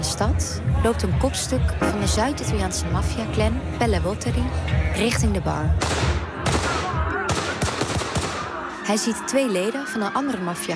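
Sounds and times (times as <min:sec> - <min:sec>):
speech: 0:00.2 - 0:06.2, 0:08.9 - 0:10.7
pistol gunshots during a nightclub shooting: 0:05.8 - 0:08.7.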